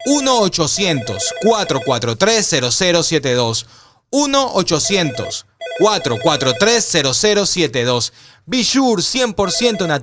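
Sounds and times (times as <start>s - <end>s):
telephone ringing after a number is dialed: 0.0s - 2.1s, 4.8s - 6.9s, 9.5s - 10.0s
speech: 0.0s - 10.0s.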